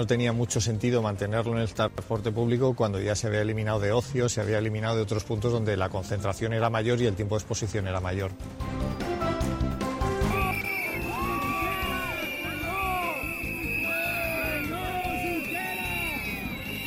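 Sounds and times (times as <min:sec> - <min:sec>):
speech: 0:00.0 - 0:09.1
crowd of Catalan independence protesters shouting at a summit protest in Barcelona: 0:10.2 - 0:16.8.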